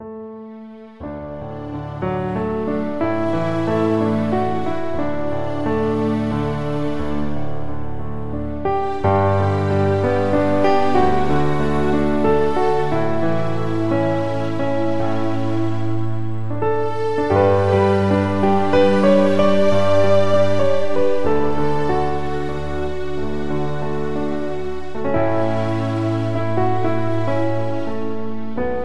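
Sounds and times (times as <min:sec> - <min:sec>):
piano on a synthesizer workstation: 0:00.0 - 0:28.8
synthesizer strings: 0:00.0 - 0:28.8.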